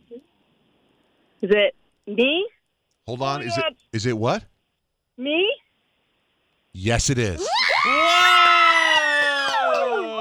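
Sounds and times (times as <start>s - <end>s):
speech: 1.4s - 4.5s, 5.2s - 5.6s, 6.8s - 7.5s
loud excited yell: 7.4s - 10.2s.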